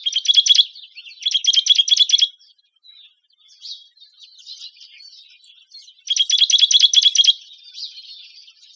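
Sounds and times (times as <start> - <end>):
Juniper titmouse rattling call: 0.0 - 2.3, 6.0 - 7.4
quiet bird twitters: 0.0 - 8.7.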